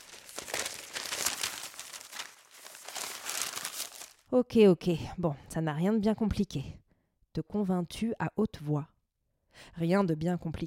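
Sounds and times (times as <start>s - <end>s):
small folded paper leaflet being unfolded, crinkling and rustling: 0.0s - 4.3s
speech: 4.3s - 6.8s, 7.4s - 8.9s, 9.6s - 10.6s.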